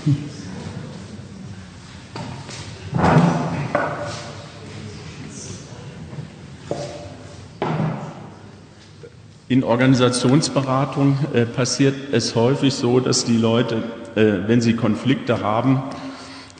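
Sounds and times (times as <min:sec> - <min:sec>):
speech: 0:00.0 - 0:00.4, 0:09.5 - 0:16.0
chair being shifted and set down with thuds and knocks: 0:02.9 - 0:04.1.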